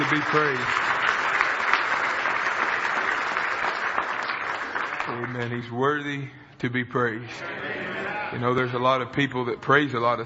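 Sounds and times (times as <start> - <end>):
church congregation clapping hands in praise during a morning service: 0.0 - 5.8
speech: 0.1 - 1.0, 5.1 - 10.2.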